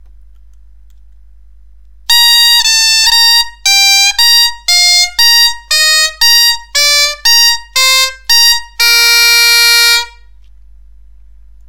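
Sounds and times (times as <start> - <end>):
bombarde playing descending scale: 2.1 - 10.2.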